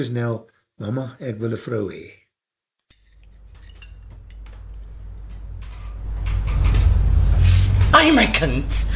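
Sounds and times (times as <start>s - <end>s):
speech: 0.0s - 2.2s, 8.0s - 8.9s
cutlery clinking on a plate: 2.9s - 4.5s
low rumbling background: 3.1s - 8.9s.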